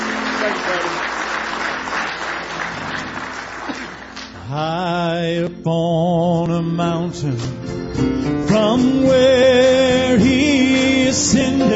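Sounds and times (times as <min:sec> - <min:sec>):
church audience clapping in praise: 0:00.0 - 0:04.5
speech: 0:00.4 - 0:01.0, 0:04.5 - 0:11.7.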